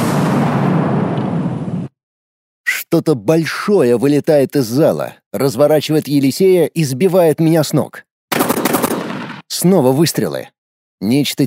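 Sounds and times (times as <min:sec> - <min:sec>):
explosion in a hall with large panoramic windows: 0:00.0 - 0:01.9
speech: 0:03.0 - 0:08.1, 0:09.5 - 0:11.4.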